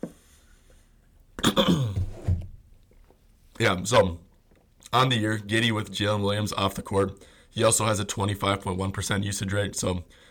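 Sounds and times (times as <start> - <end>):
person clearing throat: 1.4 - 2.4
speech: 1.6 - 1.9, 3.6 - 4.2, 4.8 - 10.2.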